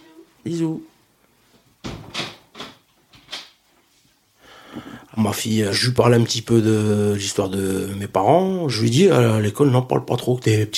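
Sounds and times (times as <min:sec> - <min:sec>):
speech: 0:00.4 - 0:00.9, 0:05.2 - 0:10.7
door latch and frame clunking and rattling as door is opened: 0:01.8 - 0:03.4.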